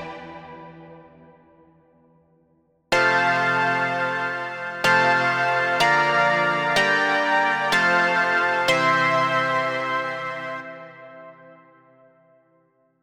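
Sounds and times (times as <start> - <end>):
disco chords: 3.0 - 11.6.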